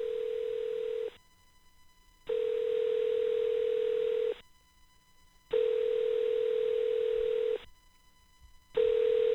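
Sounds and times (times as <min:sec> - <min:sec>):
ringback tone while placing a telephone call: 0:00.0 - 0:01.1, 0:02.3 - 0:04.4, 0:05.5 - 0:07.6, 0:08.8 - 0:09.3.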